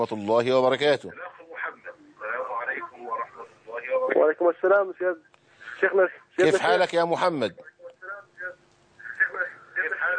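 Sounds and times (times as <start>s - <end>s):
speech: 0.0s - 1.3s, 4.2s - 7.7s
faint steady hum: 0.0s - 10.1s
television voices heard over a phone line: 0.0s - 10.1s.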